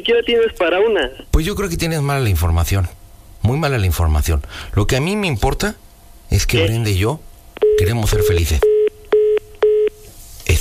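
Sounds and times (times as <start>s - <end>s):
speech: 0.0s - 8.7s
steady electronic telephone beeps after caller hangs up: 7.6s - 10.0s.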